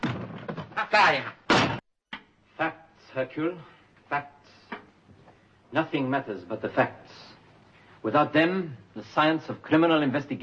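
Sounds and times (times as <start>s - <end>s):
door kicked: 0.0s - 1.8s
speech: 0.9s - 1.4s, 2.6s - 4.4s, 5.7s - 7.3s, 8.0s - 10.4s.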